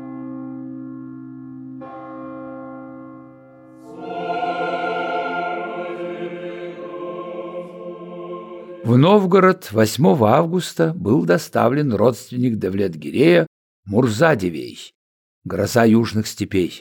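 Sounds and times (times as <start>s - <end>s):
church and monastery bells ringing in Novgorod: 1.8s - 6.9s
speech: 8.9s - 16.8s.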